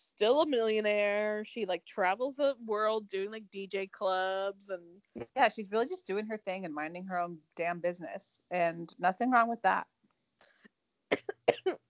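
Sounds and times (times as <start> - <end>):
speech: 0.2 - 10.0
harsh sputtering coughs after choking on saliva: 11.1 - 11.8.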